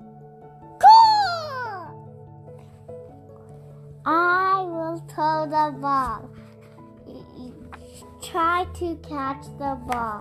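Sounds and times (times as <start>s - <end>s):
voice imitating a cat meowing: 0.8s - 1.9s
speech: 5.1s - 6.4s, 8.2s - 10.1s.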